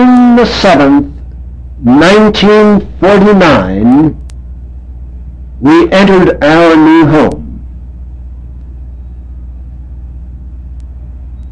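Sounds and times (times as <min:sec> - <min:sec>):
road traffic rumble: 0:00.0 - 0:11.5
speech: 0:00.4 - 0:01.2, 0:01.8 - 0:04.2, 0:05.6 - 0:07.4.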